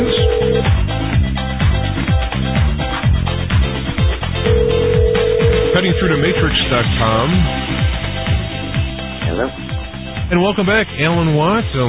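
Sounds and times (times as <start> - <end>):
telephone ring tone placing a call: 0.0 - 0.9, 4.4 - 6.7
loud busy music bed: 0.0 - 11.8
speech: 6.7 - 7.8, 10.3 - 11.8.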